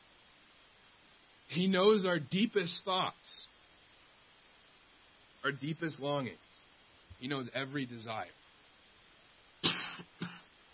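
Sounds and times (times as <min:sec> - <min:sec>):
speech: 0:01.5 - 0:03.4, 0:05.4 - 0:06.4, 0:07.2 - 0:08.4
person coughing: 0:09.6 - 0:10.5.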